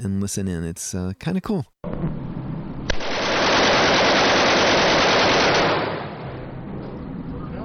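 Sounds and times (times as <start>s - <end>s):
speech: 0.2s - 2.2s
machine gun firing during a paid gun-shooting experience: 2.9s - 6.6s.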